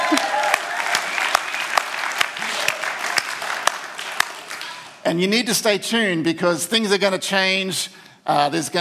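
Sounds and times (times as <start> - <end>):
audience applauding: 0.0 - 5.0
speech: 5.1 - 8.7.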